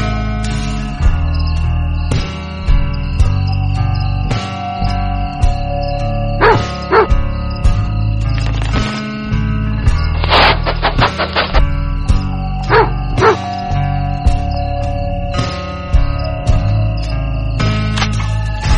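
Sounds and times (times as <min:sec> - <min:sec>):
steady gently pulsing musical background: 0:00.0 - 0:18.7
small dog giving yappy barks: 0:06.4 - 0:07.2, 0:12.7 - 0:13.5.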